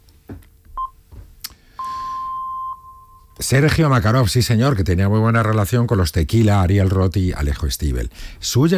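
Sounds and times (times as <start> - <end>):
faint hum: 0.0 - 8.7
radio time signal pips marking 12.30 a.m.: 1.8 - 3.4
speech: 3.4 - 8.7.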